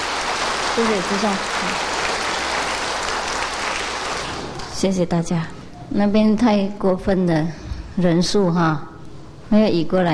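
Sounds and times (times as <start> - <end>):
audience applauding to welcome a master invited to give a teaching: 0.0 - 4.7
speech: 0.8 - 1.9, 4.8 - 8.9, 9.5 - 10.1.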